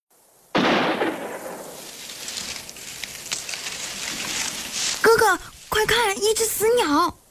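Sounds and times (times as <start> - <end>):
loud gunshot: 0.6 - 1.9
speech: 5.2 - 7.2.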